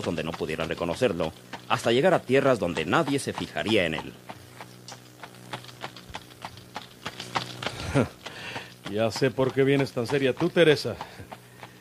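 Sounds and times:
speech: 0.0s - 4.4s, 7.9s - 8.2s, 8.9s - 11.3s
horse hooves clip-clopping pulling a tartana cart on rough country paths: 0.0s - 11.7s
laughter: 7.8s - 8.2s.

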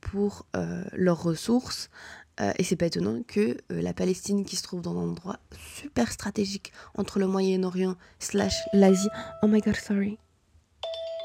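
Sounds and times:
speech: 0.1s - 10.2s
mobile phone ringing: 8.5s - 9.8s, 10.8s - 11.2s.

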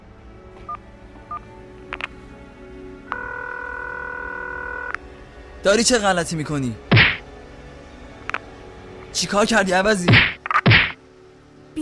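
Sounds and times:
long held phone dialing tone: 3.1s - 5.0s
speech: 5.6s - 6.9s, 9.2s - 10.3s.

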